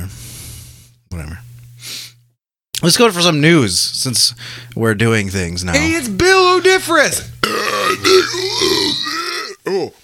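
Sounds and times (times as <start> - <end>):
speech: 1.2 - 1.5, 2.8 - 10.0
stifled throaty burp: 7.4 - 9.8.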